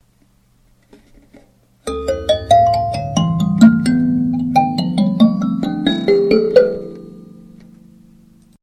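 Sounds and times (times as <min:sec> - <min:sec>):
kalimba in D: 0:01.9 - 0:08.2.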